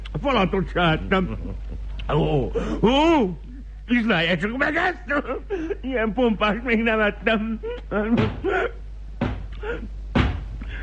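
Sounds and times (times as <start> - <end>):
speech: 0.2 - 8.8, 9.6 - 10.0
heavy knocking on a door: 8.1 - 8.5, 9.2 - 9.5, 10.1 - 10.5.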